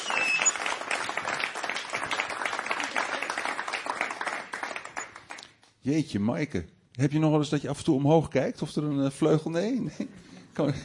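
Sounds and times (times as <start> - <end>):
crowd applauding: 0.0 - 5.5
speech: 5.8 - 10.8.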